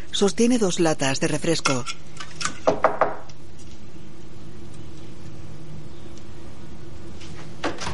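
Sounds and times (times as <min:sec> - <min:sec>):
steady low hum: 0:00.0 - 0:07.9
speech: 0:00.2 - 0:02.8
knocking on a door: 0:02.7 - 0:03.3.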